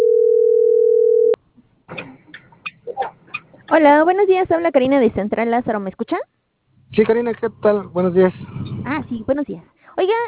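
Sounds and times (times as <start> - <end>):
ringing tone of an outgoing telephone call: 0.0 - 1.4
speech: 3.8 - 6.3, 6.9 - 10.2.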